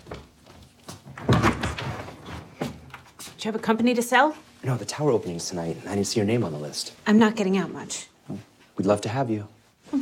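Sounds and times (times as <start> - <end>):
door handling knocks and thumps: 1.1 - 2.1
speech: 3.4 - 10.0.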